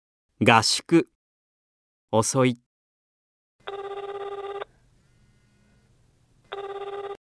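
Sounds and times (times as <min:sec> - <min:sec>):
speech: 0:00.4 - 0:01.1, 0:02.1 - 0:02.6
telephone ringing with an electronic ring: 0:03.6 - 0:04.7, 0:06.5 - 0:07.2.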